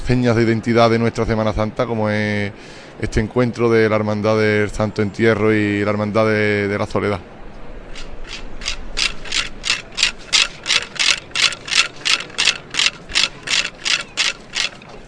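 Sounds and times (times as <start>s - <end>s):
speech: 0.1s - 7.3s
wooden ratchet rattle sounded during a Holy Week funeral procession: 7.9s - 15.0s.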